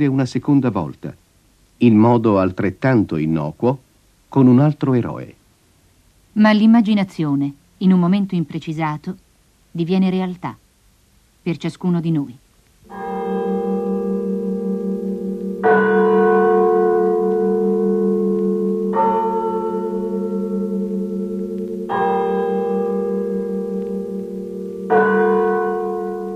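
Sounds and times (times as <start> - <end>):
speech: 0.0 - 1.2, 1.8 - 5.4, 6.4 - 9.2, 9.8 - 10.6, 11.4 - 13.1
church bell tolling slowly with a lingering metallic hum: 12.9 - 26.3.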